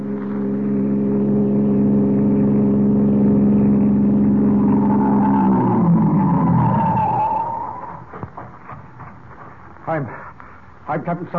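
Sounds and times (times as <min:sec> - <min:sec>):
passing car engine droning: 0:00.0 - 0:11.3
car braking and rolling to a halt at the side of the road: 0:02.2 - 0:08.8
speech: 0:11.1 - 0:11.3.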